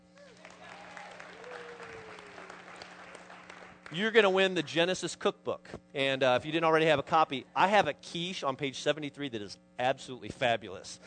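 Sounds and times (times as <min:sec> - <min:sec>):
faint hum: 0:00.0 - 0:11.0
audience applause: 0:00.2 - 0:04.0
speech: 0:03.9 - 0:11.0.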